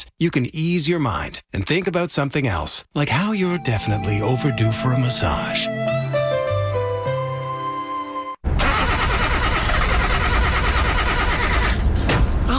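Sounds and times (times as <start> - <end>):
speech: 0.0 - 6.0
brief tonal music: 3.3 - 8.4
car engine grinding and cranking without starting: 8.5 - 12.5.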